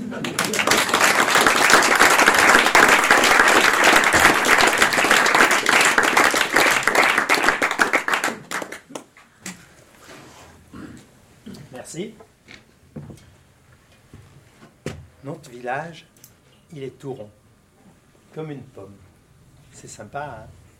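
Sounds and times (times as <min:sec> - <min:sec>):
room full of people clapping: 0:00.0 - 0:09.1
speech: 0:00.1 - 0:00.7, 0:15.7 - 0:16.1, 0:16.7 - 0:17.4, 0:18.4 - 0:19.1, 0:19.8 - 0:20.6.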